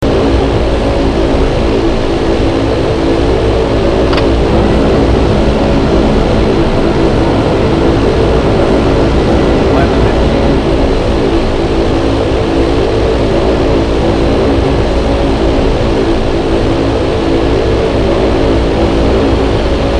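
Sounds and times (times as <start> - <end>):
ATR-72 aircraft cabin interior noise: 0.0 - 19.9.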